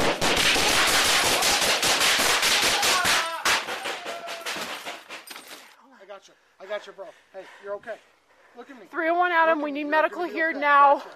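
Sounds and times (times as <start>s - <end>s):
rapid gunfire from officers exchanging shots with an armed man in an apartment: 0.0s - 5.1s
speech: 6.9s - 11.1s.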